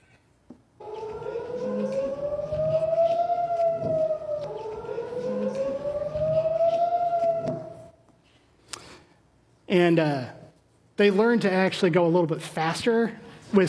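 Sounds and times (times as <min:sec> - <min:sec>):
air raid siren wailing: 0:00.8 - 0:08.2
speech: 0:09.7 - 0:10.4, 0:11.0 - 0:13.6.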